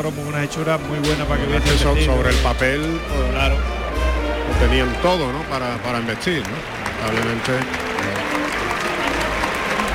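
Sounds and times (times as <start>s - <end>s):
speech: 0.0s - 3.8s, 4.5s - 7.9s
bullfight crowd ovation applause for a matador: 2.3s - 9.9s.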